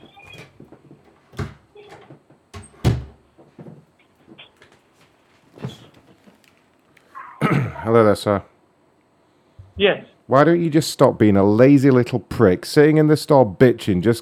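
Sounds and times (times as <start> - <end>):
office door being closed: 1.3 - 3.2
speech: 7.9 - 8.5, 9.8 - 14.2.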